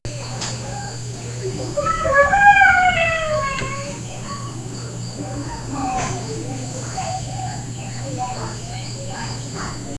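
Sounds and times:
early morning ambience in Asia: 0.1s - 9.9s.

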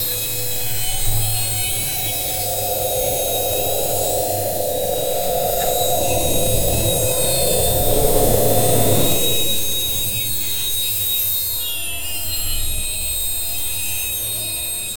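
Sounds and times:
flying drone: 0.0s - 10.9s.

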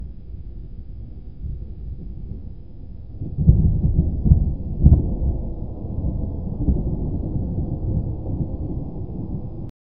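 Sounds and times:
heavy thunder on an overcast day: 3.2s - 9.7s.

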